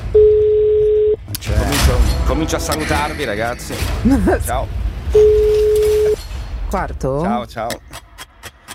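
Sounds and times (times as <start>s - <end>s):
telephone ringing tone on the line: 0.2s - 1.2s, 5.2s - 6.2s
speech: 2.4s - 5.4s, 6.7s - 8.0s.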